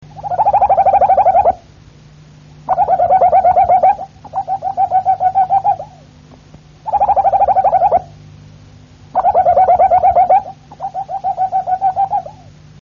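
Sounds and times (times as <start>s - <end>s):
Harz Roller canary singing low mellow rolling trills: 0.0s - 1.7s, 2.6s - 6.2s, 6.8s - 8.2s, 9.1s - 12.6s
low hum: 0.0s - 12.8s.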